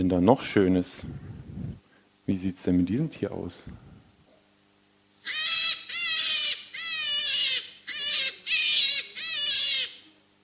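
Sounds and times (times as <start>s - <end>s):
speech: 0.0s - 1.2s, 2.3s - 3.8s
rabbit squealing: 5.2s - 10.1s.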